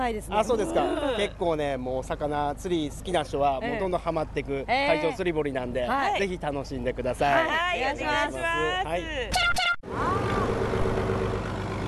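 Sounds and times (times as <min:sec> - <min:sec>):
speech: 0:00.0 - 0:10.6
fishing boat engine running as the boat departs: 0:09.9 - 0:11.8.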